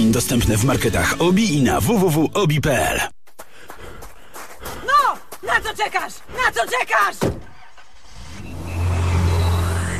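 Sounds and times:
speech: 0.0s - 3.2s, 5.5s - 7.4s
Nissan car engine revving: 7.8s - 9.9s.

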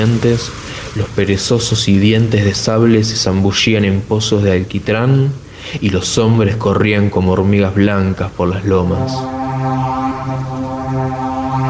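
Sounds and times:
speech: 0.0s - 9.4s
low steady droning siren horn tone: 8.7s - 11.6s.

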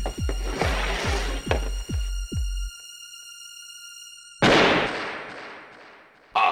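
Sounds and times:
low regular thumps: 0.0s - 2.7s
pistol gunshot during a game of Russian roulette: 4.4s - 6.1s.

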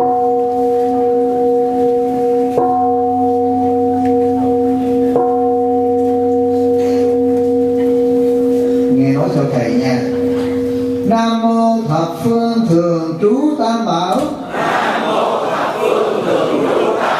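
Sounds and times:
temple bell struck at a Buddhist retreat ceremony: 0.0s - 13.2s
laughter: 14.5s - 17.1s.

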